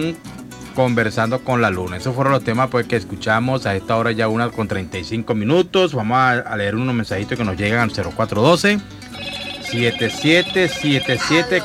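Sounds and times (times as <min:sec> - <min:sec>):
speech: 0:00.0 - 0:11.6
telephone ringing with an incoming call to a radio call-in line: 0:09.1 - 0:11.6.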